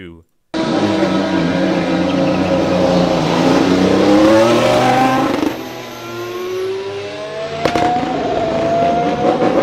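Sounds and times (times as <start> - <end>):
speech: 0.0 - 1.5
Formula One car engine accelerating out of the pits: 0.5 - 9.6
Formula One car engine crackling pop: 7.6 - 8.1.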